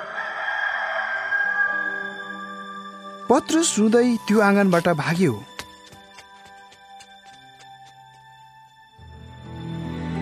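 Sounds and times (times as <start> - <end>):
rooster crowing: 0.0 - 2.5
soft music: 0.0 - 10.2
speech: 3.3 - 5.5.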